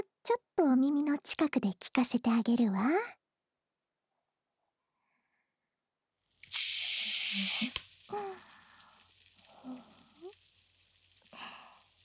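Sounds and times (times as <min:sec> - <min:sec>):
speech: 0:00.6 - 0:03.2
sharp burst of spraying hiss: 0:06.4 - 0:12.0
sponge crackling and popping in a hand: 0:06.4 - 0:12.0.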